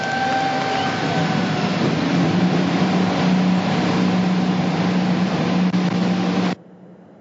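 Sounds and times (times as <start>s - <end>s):
IndyCar race car engines starting up on pit road in Detroit: 0.0s - 6.6s.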